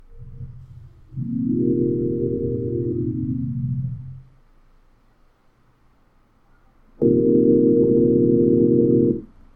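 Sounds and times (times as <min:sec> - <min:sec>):
bats synth sound: 0:01.1 - 0:04.2, 0:07.0 - 0:09.2.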